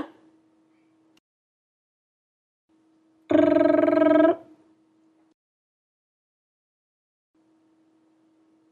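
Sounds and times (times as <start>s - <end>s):
tongue rolling: 3.3s - 4.6s.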